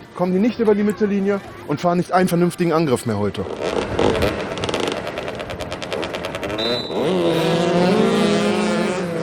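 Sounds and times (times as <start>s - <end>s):
speech: 0.2s - 4.3s
motorcycle engines revving on a motoball field: 3.4s - 9.2s.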